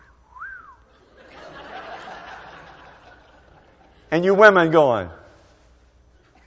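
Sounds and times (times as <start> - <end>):
man's wolf whistle at passing woman: 0.0 - 0.9
audience laughter: 0.9 - 4.1
speech: 4.1 - 5.2.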